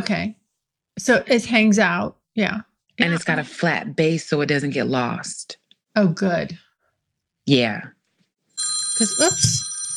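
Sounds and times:
speech: 0.0s - 0.4s, 1.0s - 6.6s, 7.4s - 8.0s, 8.6s - 9.6s
phone ringing with a bright electronic trill: 8.5s - 9.9s.

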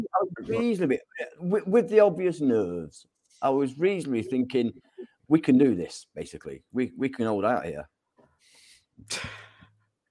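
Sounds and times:
speech: 0.0s - 8.0s, 9.0s - 9.5s
sneeze: 9.1s - 9.5s.

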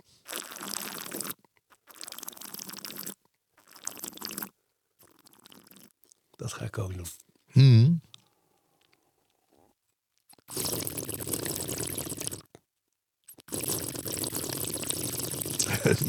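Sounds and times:
slurping wine through the lips to taste it: 0.0s - 6.2s, 10.3s - 12.6s, 13.3s - 16.0s
speech: 6.5s - 8.0s
laughter: 15.6s - 16.0s.

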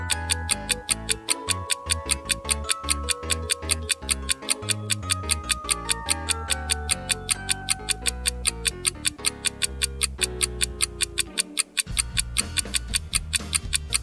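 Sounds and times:
low sustained music: 0.0s - 14.0s
wristwatch ticking: 0.0s - 14.0s.

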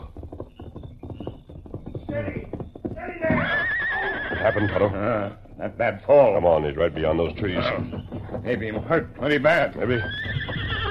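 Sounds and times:
galloping hoofbeats: 0.0s - 10.8s
speech: 2.1s - 3.3s, 4.4s - 10.3s
horse whinnying: 2.4s - 5.4s, 7.4s - 8.3s, 9.6s - 10.8s.

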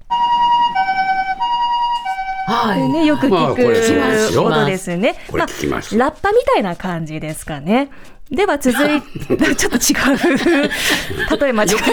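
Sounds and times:
standard two-tone ambulance siren: 0.0s - 4.6s
laughter: 2.5s - 5.8s, 8.7s - 11.9s
speech: 2.5s - 11.9s.

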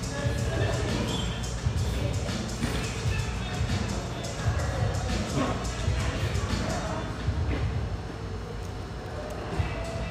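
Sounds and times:
overlapping voices and chatter in a busy high-ceilinged coffee shop: 0.0s - 10.1s.

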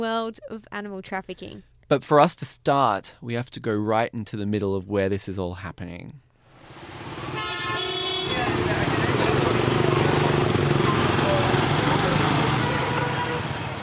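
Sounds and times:
speech: 0.0s - 6.2s
dense city traffic with engines and motorbikes: 6.5s - 13.8s
car horn honking: 7.2s - 9.2s, 10.2s - 13.8s
indistinct voices: 8.3s - 12.7s.

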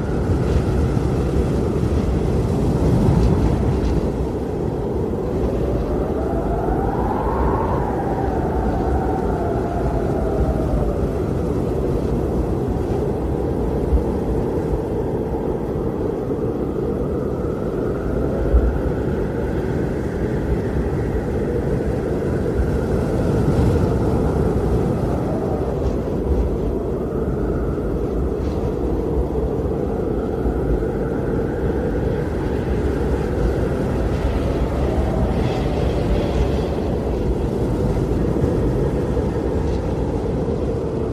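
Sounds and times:
heavy blizzard storm wind roaring: 0.0s - 41.0s.

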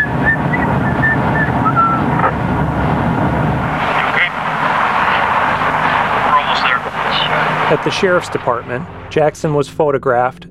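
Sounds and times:
man whistling casually: 0.0s - 2.3s
moving car road noise rumble: 0.0s - 9.5s
speech: 7.7s - 10.4s.

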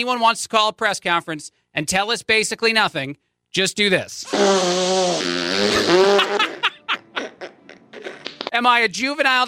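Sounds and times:
speech: 0.0s - 6.4s, 8.6s - 9.4s
children blowing mouth-made fart noise: 4.2s - 6.6s, 7.2s - 8.5s
children giggling and snickering: 5.6s - 8.4s.

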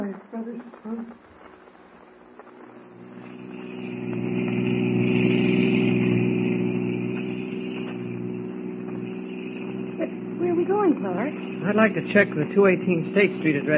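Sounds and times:
car engine running: 1.9s - 13.7s
speech: 11.8s - 13.7s.

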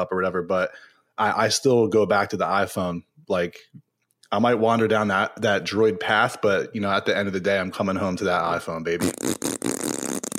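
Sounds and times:
speech: 0.0s - 9.9s
buzzy fart: 9.0s - 10.3s.

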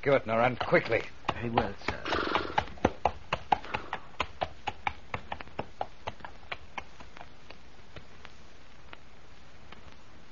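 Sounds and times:
speech: 0.0s - 2.1s
horse hooves clip-clopping: 0.0s - 9.1s.

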